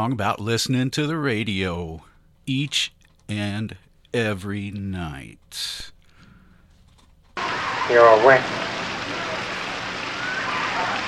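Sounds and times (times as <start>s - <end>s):
speech: 0.0s - 6.0s, 7.9s - 8.8s
steady rain hiss: 7.4s - 11.0s.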